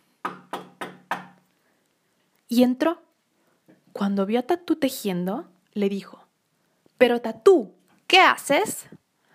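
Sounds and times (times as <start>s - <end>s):
sharp knocks on a door: 0.2s - 1.4s
speech: 2.5s - 3.0s, 4.0s - 6.2s, 7.0s - 9.0s.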